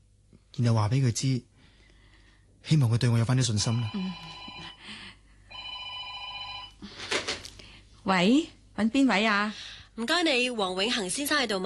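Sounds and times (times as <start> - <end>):
speech: 0.6 - 1.5, 2.6 - 5.0, 8.0 - 11.6
telephone bell ringing: 3.6 - 4.8, 5.5 - 6.8.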